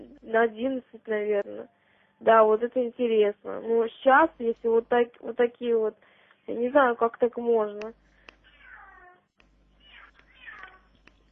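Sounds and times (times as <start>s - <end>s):
speech: 0.3s - 8.0s
cat in heat yowling: 8.6s - 9.2s, 9.8s - 11.0s
soft clicks: 9.4s - 11.3s.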